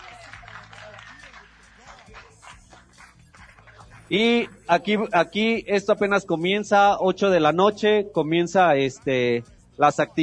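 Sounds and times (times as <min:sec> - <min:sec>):
crowd applauding: 0:00.0 - 0:04.6
music: 0:00.0 - 0:10.2
speech: 0:04.1 - 0:10.2.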